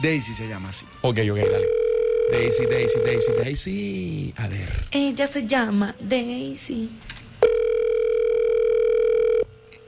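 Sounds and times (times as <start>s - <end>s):
speech: 0.0s - 7.2s
telephone ringback tone while a call waits to be answered: 1.4s - 3.5s, 7.4s - 9.7s.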